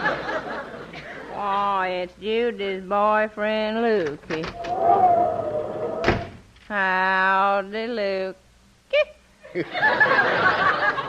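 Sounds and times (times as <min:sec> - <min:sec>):
laughter: 0:00.0 - 0:01.4, 0:09.5 - 0:11.0
speech: 0:01.4 - 0:05.9, 0:06.7 - 0:11.0
front door creaking open: 0:04.3 - 0:06.5
front door slamming shut: 0:05.9 - 0:06.5.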